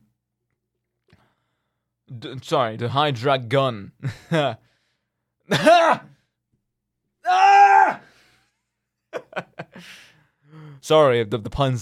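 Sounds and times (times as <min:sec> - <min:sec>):
speech: 0:02.1 - 0:04.7, 0:05.5 - 0:06.1, 0:10.8 - 0:11.8
person letting out theatrical wordless screams and wails: 0:05.5 - 0:06.1, 0:07.2 - 0:08.1.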